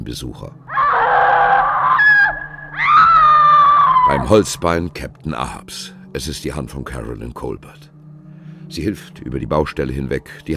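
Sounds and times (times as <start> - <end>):
speech: 0.0 - 1.1, 4.1 - 7.9, 8.7 - 10.5
shrill strained scream in an old stone building: 0.7 - 4.4.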